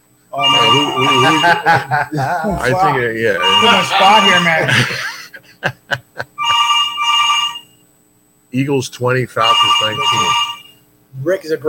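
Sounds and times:
speech: 0.3 - 6.3, 8.5 - 10.5, 11.2 - 11.6
steady electronic ringback tone on an outgoing phone call: 0.4 - 1.8, 3.4 - 4.7, 6.4 - 7.8, 9.4 - 10.8
men laughing: 0.6 - 6.6.

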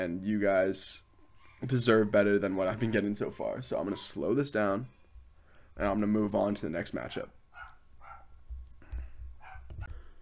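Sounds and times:
speech: 0.0 - 5.0, 5.8 - 7.4
pet dog barking: 7.5 - 8.4, 9.4 - 9.9.

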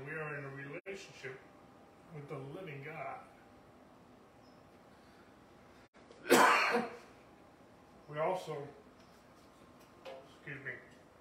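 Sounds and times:
speech: 2.1 - 3.4, 8.2 - 8.8, 10.5 - 10.9
man coughing while trying to clear his throat: 6.2 - 7.1.

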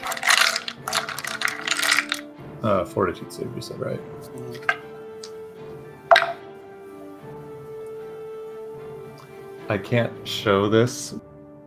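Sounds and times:
dice rolled across a hard tabletop: 0.0 - 2.3, 6.1 - 6.4
speech: 2.6 - 4.8, 9.7 - 11.2.

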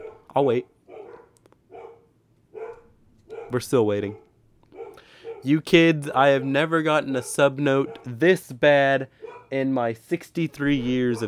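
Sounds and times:
dog barking: 0.0 - 8.4, 9.1 - 9.7, 10.8 - 11.2
speech: 0.4 - 0.7, 3.5 - 4.2, 5.4 - 11.2
faint clicks: 1.3 - 1.6.

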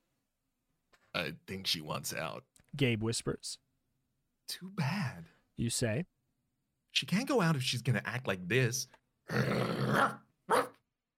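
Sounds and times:
speech: 1.2 - 3.6, 4.5 - 6.2, 6.9 - 10.6
dog snarling: 9.3 - 10.7
dog barking: 10.0 - 10.8.

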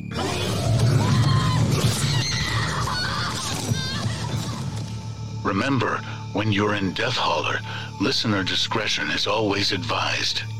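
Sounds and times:
overlapping high-pitched screams and shrieks: 0.0 - 4.8
dense rumbling din: 0.1 - 5.5
speech: 5.5 - 10.5.

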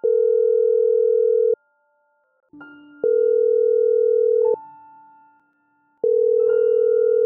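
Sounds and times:
phone ringing with electronic tone: 0.0 - 1.6, 3.0 - 4.6, 6.0 - 7.2.

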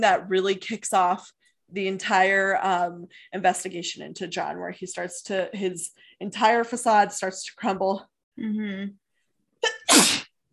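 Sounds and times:
speech: 0.0 - 9.0
sneeze: 9.6 - 10.3.

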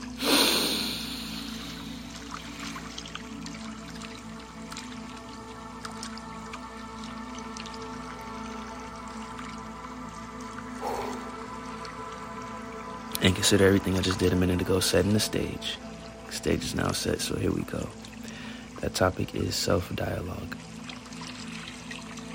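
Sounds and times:
breathy rush of a deep breath: 0.2 - 2.1, 10.8 - 11.4
speech: 13.3 - 18.1, 18.8 - 20.7.

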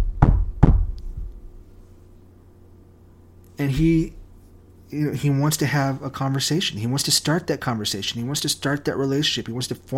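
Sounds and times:
firm knocks on a door: 0.0 - 1.3
speech: 3.6 - 4.2, 4.9 - 9.9.

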